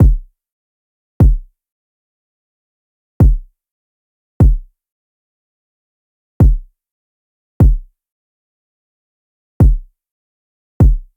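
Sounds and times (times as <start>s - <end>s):
kick drum loop at 150 BPM: 0.0s - 0.3s, 1.2s - 1.5s, 3.2s - 3.5s, 4.4s - 4.7s, 6.4s - 6.7s, 7.6s - 7.9s, 9.6s - 9.9s, 10.8s - 11.1s.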